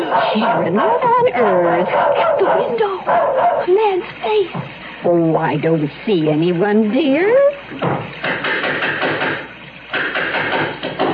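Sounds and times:
speech: 0.1 - 8.6
heavy knocking on a door: 7.8 - 11.1.

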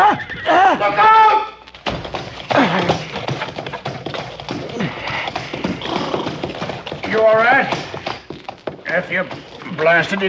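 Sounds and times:
horse neighing and whinnying: 0.0 - 1.0, 2.5 - 8.1
horse hooves clip-clopping: 1.6 - 10.2
speech: 9.0 - 10.2.

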